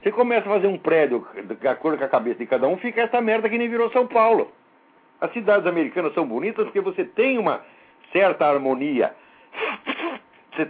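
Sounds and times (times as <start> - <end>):
speech: 0.0 - 4.6, 5.2 - 10.6
person sneezing: 9.5 - 10.4.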